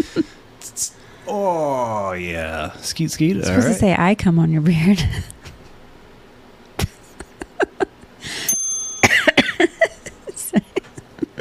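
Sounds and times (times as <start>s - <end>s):
laughter: 0.0s - 0.3s, 6.8s - 8.1s, 9.4s - 11.3s
speech: 0.2s - 5.4s
person in a harsh coughing fit: 9.0s - 10.1s.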